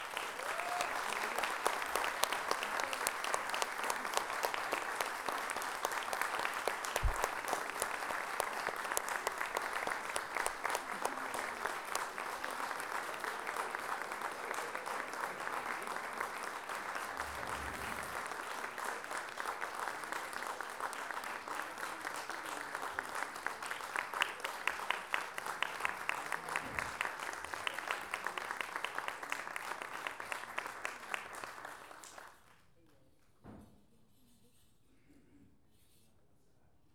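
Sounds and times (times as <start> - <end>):
audience applause for a live band: 0.0 - 32.4
low thumps: 7.0 - 7.4.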